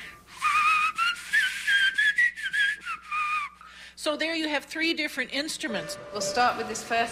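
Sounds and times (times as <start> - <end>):
shrill breathy whistling through the teeth: 0.1 - 3.8
speech: 4.0 - 7.1.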